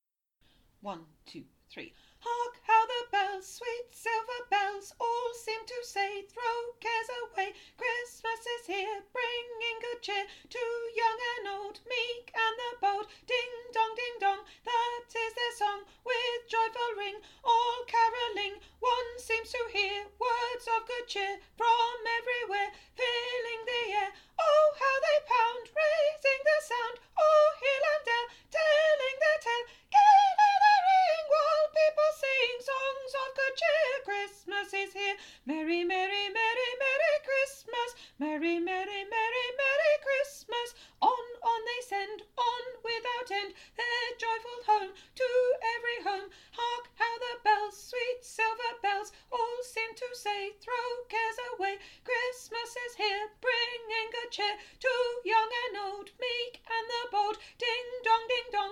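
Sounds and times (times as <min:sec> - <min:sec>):
soprano singing a carol: 0:02.2 - 0:58.7.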